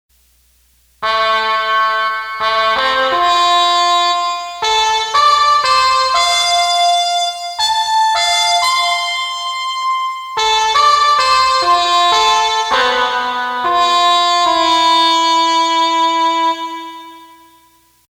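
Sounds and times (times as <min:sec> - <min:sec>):
muted keyboard tone: 0:01.0 - 0:17.5.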